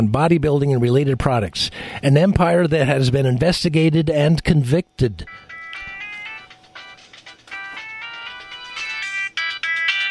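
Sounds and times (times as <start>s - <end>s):
speech: 0.0s - 5.4s
cell phone ringtone electronic melody: 5.3s - 10.1s.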